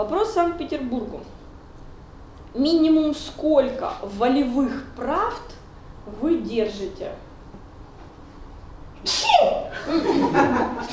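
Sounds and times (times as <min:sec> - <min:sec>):
speech: 0:00.0 - 0:01.4, 0:02.5 - 0:07.3, 0:09.0 - 0:10.9
single sharp sneeze: 0:09.0 - 0:09.7
laughter: 0:09.7 - 0:10.9.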